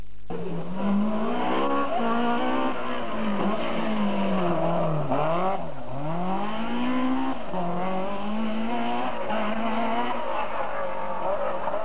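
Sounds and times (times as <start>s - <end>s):
Porsche 911 engine on a hairpin bend: 0.3s - 11.8s.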